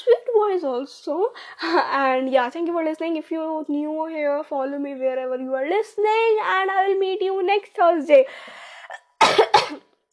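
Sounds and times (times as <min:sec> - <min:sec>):
speech: 0:00.0 - 0:08.7
soft breathy exhale: 0:08.3 - 0:08.9
two sharp loud coughs: 0:09.0 - 0:09.9.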